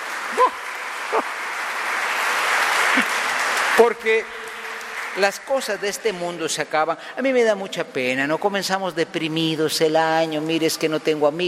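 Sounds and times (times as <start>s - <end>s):
audience applauding: 0.0s - 7.0s
speech: 3.8s - 4.4s, 5.2s - 11.4s.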